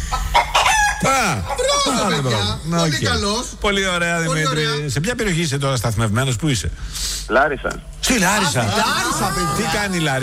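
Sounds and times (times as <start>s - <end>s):
hen clucking: 0.0s - 2.6s
speech: 1.0s - 10.2s.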